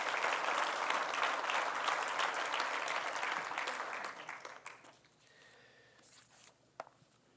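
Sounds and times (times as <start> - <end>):
congregation applauding: 0.0 - 5.1
shuffling noises: 4.8 - 7.3.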